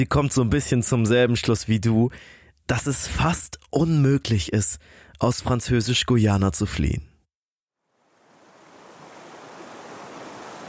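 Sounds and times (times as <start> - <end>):
speech: 0.0 - 7.1
river water flowing and lapping: 7.9 - 10.6.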